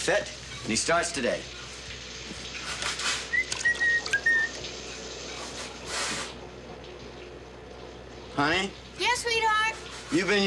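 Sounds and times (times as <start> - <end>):
speech: 0.0 - 1.6, 8.4 - 10.4
shower running: 0.0 - 10.4
whistled notes: 3.3 - 4.6.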